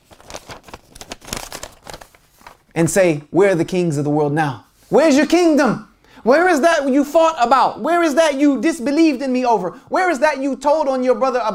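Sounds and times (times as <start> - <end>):
sheet of paper being crumpled up in the hands: 0.0 - 2.8
speech: 2.8 - 11.5.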